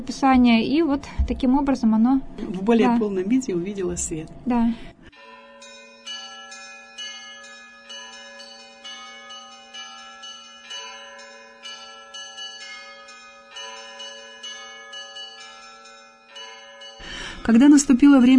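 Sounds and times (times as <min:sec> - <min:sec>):
speech: 0:00.0 - 0:05.0, 0:17.5 - 0:18.3
church bells pealing over the town of Verkhoturye: 0:05.1 - 0:18.3.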